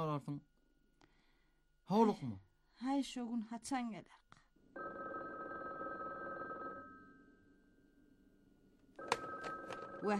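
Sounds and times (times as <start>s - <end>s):
speech: 0.0s - 0.5s, 1.9s - 4.9s, 10.0s - 10.1s
telephone ringing: 4.8s - 7.6s, 9.0s - 10.1s.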